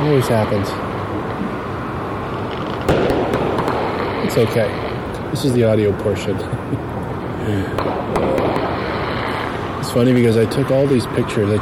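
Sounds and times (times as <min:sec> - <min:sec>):
fireworks crackling and popping: 0:00.0 - 0:11.6
steady rumble of outdoor noise: 0:00.0 - 0:11.6
speech: 0:00.1 - 0:01.0, 0:04.3 - 0:08.5, 0:09.9 - 0:11.6
sharp firework bursts: 0:02.1 - 0:06.3, 0:07.2 - 0:11.5
laughter: 0:06.2 - 0:07.8.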